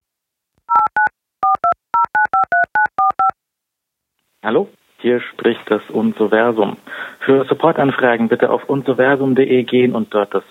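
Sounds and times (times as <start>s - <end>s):
telephone keypad dialing tones: 0.7s - 3.4s
speech: 4.4s - 10.5s.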